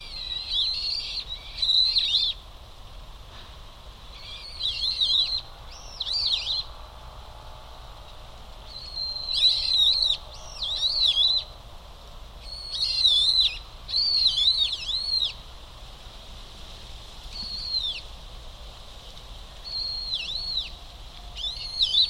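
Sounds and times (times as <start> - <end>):
Brown-eared bulbul calling: 0.0 - 2.4, 4.1 - 6.8, 8.6 - 11.6, 12.4 - 15.4, 17.3 - 18.1, 19.6 - 22.0.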